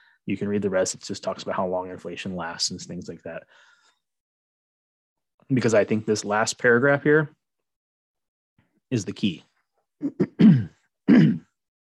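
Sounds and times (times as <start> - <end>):
speech: 0.3 - 3.8, 5.5 - 7.4, 8.9 - 11.3
person clearing throat with a tickle in the throat: 10.0 - 11.6.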